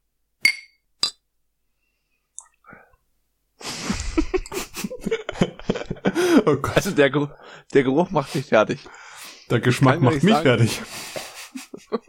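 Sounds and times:
beer glasses clinking in a toast: 0.4 - 1.2
laughter: 3.6 - 7.0, 10.0 - 12.0
speech: 6.4 - 11.1
loud lively voices: 7.8 - 11.1.

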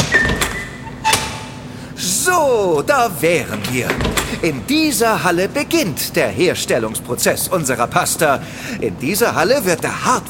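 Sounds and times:
door to a pasta factory production hall opening and closing: 0.0 - 1.7, 3.5 - 4.8
steady hum: 0.0 - 10.2
speech: 2.3 - 10.2.

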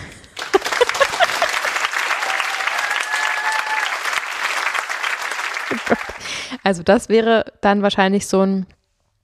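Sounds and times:
laughter: 0.4 - 2.9, 5.2 - 6.5
audience applause: 0.4 - 6.5
audience cheers and whoops: 0.9 - 4.6, 5.6 - 6.2
speech: 5.9 - 8.8.

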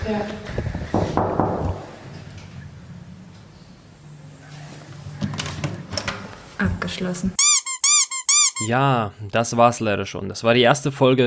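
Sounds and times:
speech: 0.1 - 0.7, 6.6 - 7.4, 8.6 - 11.2
sharp knocks on a door: 0.9 - 1.9.

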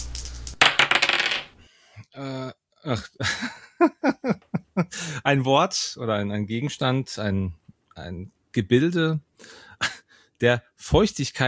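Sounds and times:
dice rolling on a hard table: 0.6 - 1.6
speech: 2.2 - 11.4.

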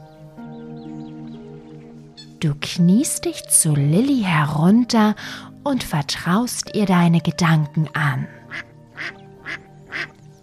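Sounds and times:
speech: 2.4 - 8.7
small duck quacking: 8.5 - 10.1.

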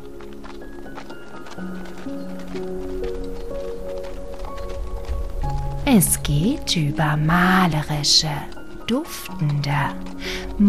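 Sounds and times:
horses walking with riders, clip-clop of hooves: 0.0 - 10.6
speech: 6.0 - 10.6.

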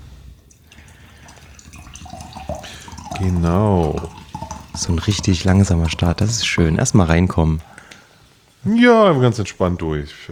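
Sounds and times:
water pouring into a glass: 0.5 - 7.6
speech: 3.2 - 4.2, 4.8 - 7.7, 8.6 - 10.3.

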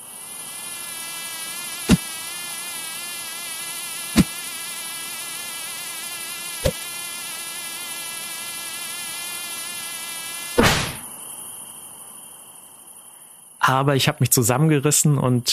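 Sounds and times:
mosquitoes buzzing: 0.0 - 13.6
sharp smacks: 10.6 - 11.0
speech: 13.7 - 15.5.

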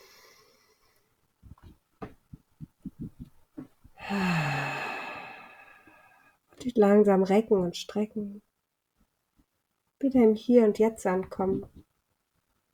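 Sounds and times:
deep breath in during a guided relaxation exercise: 4.0 - 6.4
speech: 4.1 - 4.4, 6.7 - 8.5, 10.0 - 11.8.

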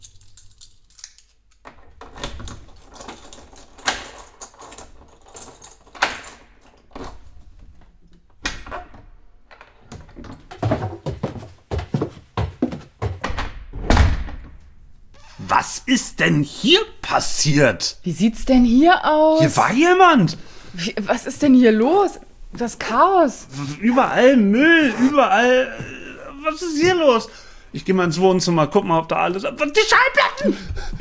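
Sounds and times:
apartment door at the top of a stairwell being unlocked and opened: 1.6 - 10.9, 13.2 - 15.5
speech: 15.6 - 25.9, 26.5 - 30.9.

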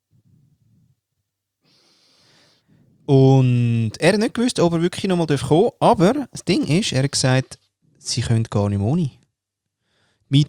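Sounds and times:
slow deep breaths close to the microphone: 1.7 - 3.0
speech: 3.1 - 9.2, 10.3 - 10.4.

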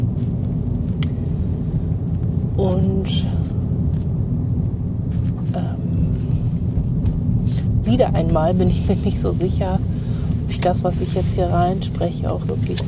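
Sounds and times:
car engine and tire drone: 0.0 - 12.8
car interior road rumble: 0.0 - 12.8
speech: 2.7 - 3.4, 7.9 - 12.8.

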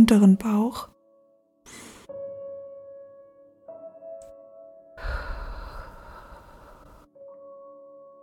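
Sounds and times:
long deep exhale: 1.7 - 2.1, 5.0 - 7.1
short intake of breath: 1.7 - 2.1, 5.0 - 7.0.

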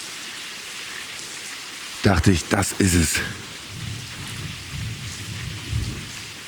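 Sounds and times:
rain falling: 0.0 - 6.4
speech: 2.0 - 3.6
rolling thunder: 3.6 - 6.4.

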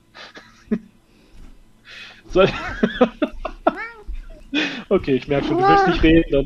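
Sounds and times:
soft breathy noises: 1.0 - 2.4, 3.3 - 5.8
laughter: 2.2 - 3.8, 4.6 - 5.8
speech: 2.3 - 3.2, 4.9 - 6.4
cat meowing: 3.7 - 4.5.

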